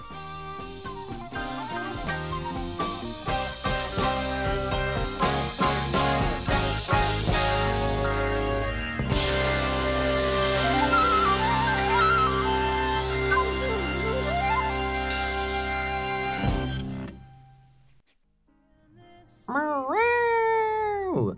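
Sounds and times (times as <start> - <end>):
dense sustained musical passage: 0.0 - 17.4
cat meowing: 19.5 - 21.3.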